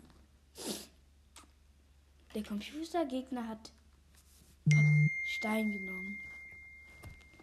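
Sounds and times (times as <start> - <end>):
speech: 2.3 - 3.8, 4.7 - 6.3
mobile phone notification electronic tone: 4.7 - 6.7.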